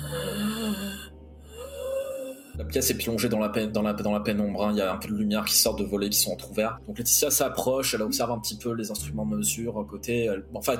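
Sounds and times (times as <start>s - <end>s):
voice imitating heavy labored breathing of a sick man: 0.0s - 2.7s
speech: 2.7s - 10.7s.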